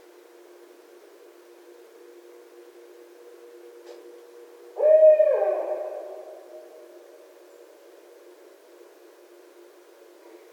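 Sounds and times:
Barred owl hoot: 0:04.8 - 0:07.2.

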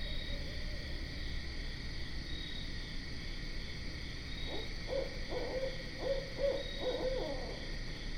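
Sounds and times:
steady insect trilling: 0:00.0 - 0:03.0, 0:04.2 - 0:08.0
barred owl hooting: 0:04.4 - 0:07.8.

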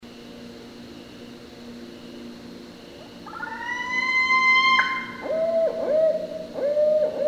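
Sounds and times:
barred owl giving short barking hoots: 0:03.3 - 0:07.2.

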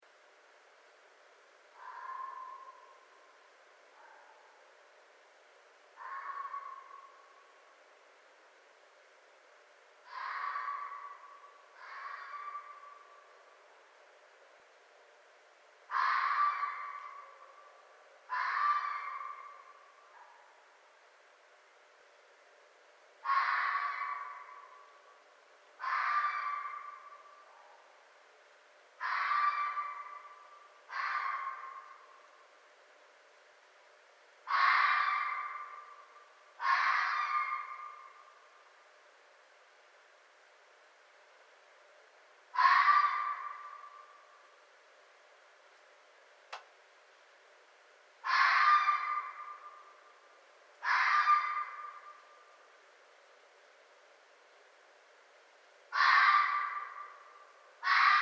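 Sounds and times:
Red Fox calling: 0:01.8 - 0:03.2, 0:06.0 - 0:07.6, 0:10.0 - 0:13.6, 0:15.9 - 0:20.7, 0:23.2 - 0:25.2, 0:25.8 - 0:28.0, 0:29.0 - 0:32.3, 0:34.4 - 0:38.6, 0:42.5 - 0:44.6, 0:48.2 - 0:50.2, 0:50.8 - 0:52.7, 0:55.9 - 0:58.1.

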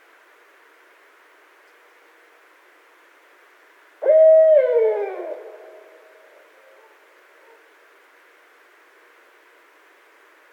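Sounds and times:
barred owl hooting: 0:04.0 - 0:07.7.

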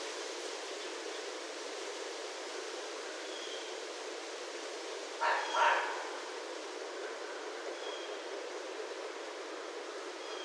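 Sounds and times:
faint hissing background: 0:00.0 - 0:10.4
red fox uttering rough raspy barks: 0:05.2 - 0:06.2.

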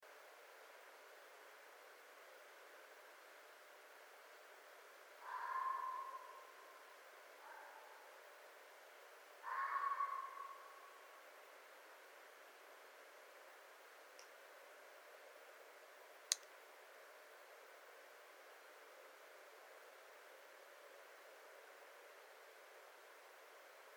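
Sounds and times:
red fox in North America: 0:05.2 - 0:08.3, 0:09.4 - 0:11.2.

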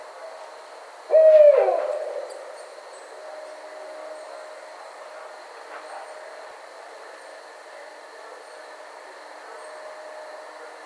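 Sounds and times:
barred owl hoot: 0:01.1 - 0:02.9.

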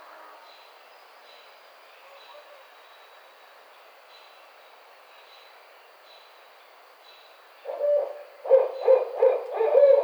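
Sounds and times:
barred owl hooting: 0:07.7 - 0:10.0.

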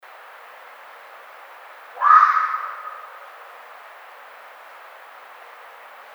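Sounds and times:
red fox giving a rasping bark: 0:02.0 - 0:03.2.

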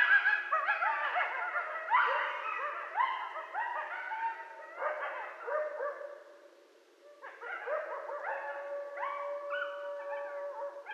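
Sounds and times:
group of coyotes yipping, barking and howling: 0:00.0 - 0:06.4, 0:07.0 - 0:10.9.

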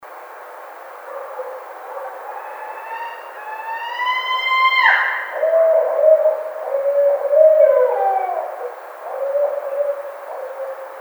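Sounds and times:
Barred owl calling with wails, hoots and cackling notes: 0:01.1 - 0:11.0.

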